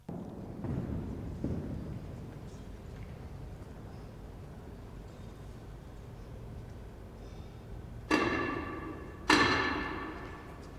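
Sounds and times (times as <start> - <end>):
steady hum: 0.0 - 10.7
guards banging their staffs on the ground outdoors: 8.1 - 10.7.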